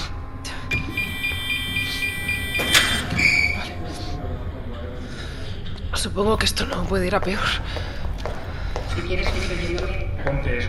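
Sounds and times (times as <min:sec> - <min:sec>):
steady low hum: 0:00.0 - 0:10.6
thin electronic tones: 0:00.7 - 0:03.8
mechanical sliding door of a room whooshing open: 0:02.2 - 0:03.7
speech: 0:06.0 - 0:07.9, 0:09.0 - 0:10.6.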